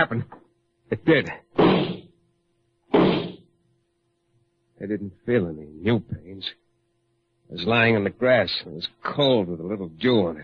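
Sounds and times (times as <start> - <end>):
speech: 0.0 - 1.4, 4.8 - 6.6, 7.5 - 10.4
faint steady hum: 0.0 - 10.4
gunshots: 1.6 - 2.1, 2.9 - 3.4.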